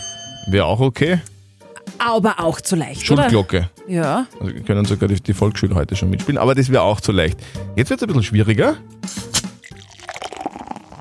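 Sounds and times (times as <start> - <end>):
speech: 0.5 - 1.3, 2.0 - 9.2
beer bottle cracked open with a short hiss: 9.0 - 10.9
beer glugging and splashing as it is poured into a glass: 9.6 - 10.9.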